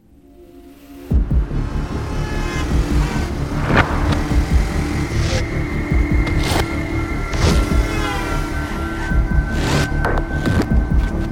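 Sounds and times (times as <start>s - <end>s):
car driving along a road: 1.2s - 10.3s.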